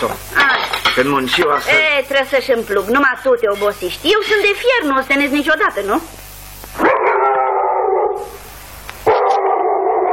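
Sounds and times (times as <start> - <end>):
speech: 0.0 - 0.4, 1.0 - 6.2
dog howling: 6.8 - 8.4, 9.1 - 10.1.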